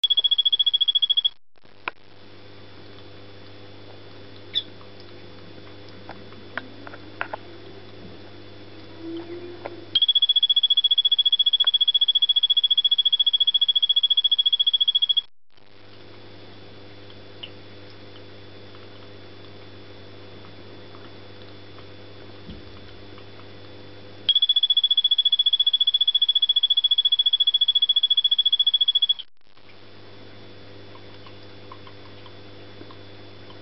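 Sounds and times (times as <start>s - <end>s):
male Phyllobates vittatus frog calling: 0.0s - 1.3s, 9.0s - 15.3s, 24.3s - 29.3s.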